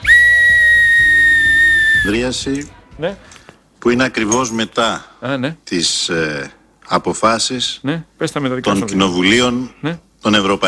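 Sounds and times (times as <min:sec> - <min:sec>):
human whistling: 0:00.0 - 0:02.2
speech: 0:02.0 - 0:10.6.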